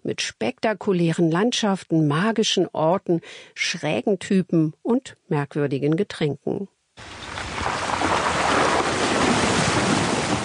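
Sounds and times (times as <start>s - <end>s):
speech: 0.0s - 7.8s
off-road vehicle pushing through creek water: 7.0s - 10.4s.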